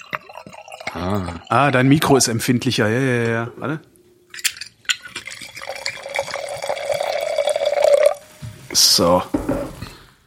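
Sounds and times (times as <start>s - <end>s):
Riesling wine pouring into a glass: 0.0s - 2.2s, 4.9s - 8.2s
speech: 0.9s - 3.9s, 9.0s - 9.5s.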